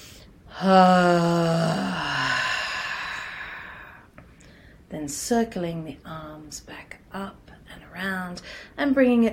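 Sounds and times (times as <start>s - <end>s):
forceful voiced exhalation during a breathing exercise: 0.5s - 4.1s
speech: 0.6s - 1.8s, 5.0s - 9.3s.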